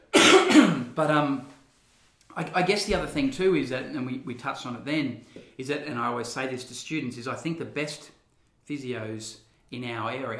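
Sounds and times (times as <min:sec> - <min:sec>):
person clearing throat: 0:00.0 - 0:01.0
speech: 0:01.0 - 0:01.5, 0:02.4 - 0:10.3.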